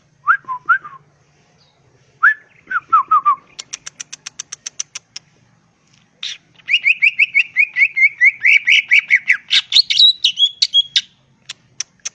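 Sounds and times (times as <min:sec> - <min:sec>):
greater green leafbird singing slurred looping whistles: 0:00.2 - 0:05.2, 0:06.2 - 0:12.1
greater green leafbird sharp high ticks: 0:03.6 - 0:05.3, 0:11.4 - 0:12.1.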